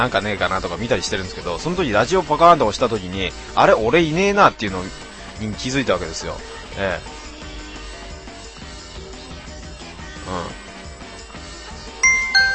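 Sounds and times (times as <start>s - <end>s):
speech: 0.0s - 7.2s, 10.3s - 10.6s
bright electronic ding-dong chime: 12.0s - 12.5s.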